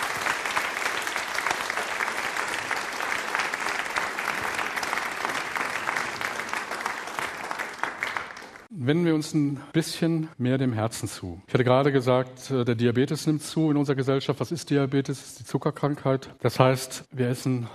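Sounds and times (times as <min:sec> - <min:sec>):
audience applause: 0:00.0 - 0:08.7
speech: 0:08.9 - 0:17.7.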